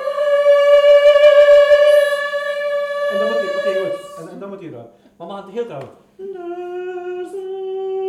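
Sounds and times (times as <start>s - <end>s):
dog howling: 0.0s - 4.3s
speech: 4.4s - 6.8s.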